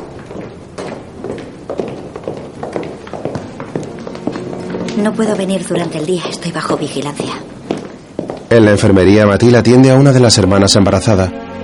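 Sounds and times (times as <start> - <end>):
hurried footsteps on a hard stone floor in a convent cloister: 0.0 - 9.0
speech: 5.0 - 7.6, 8.5 - 11.4.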